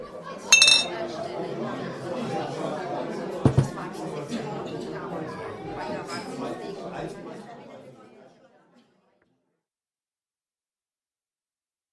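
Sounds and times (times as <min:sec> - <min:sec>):
murmur of people chatting: 0:00.0 - 0:09.2
glasses clinking in a toast: 0:00.5 - 0:01.0.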